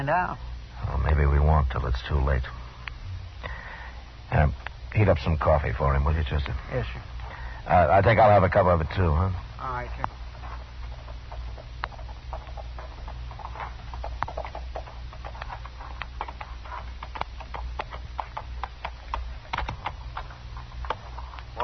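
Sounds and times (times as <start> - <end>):
speech: 0.0 - 0.5, 1.1 - 2.6, 4.3 - 10.2
horse hooves clopping: 4.4 - 21.6.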